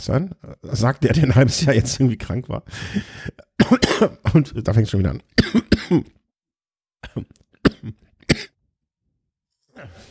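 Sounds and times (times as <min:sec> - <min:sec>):
speech: 0:00.0 - 0:06.2, 0:07.0 - 0:08.5
person coughing: 0:03.6 - 0:04.2, 0:05.4 - 0:06.2, 0:07.0 - 0:08.6.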